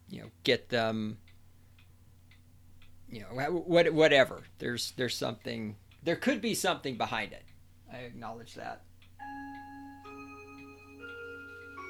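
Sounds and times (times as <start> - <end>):
speech: 0.3 - 1.2, 3.1 - 9.5
clock chiming the hour with resonant bell strikes: 9.2 - 11.8.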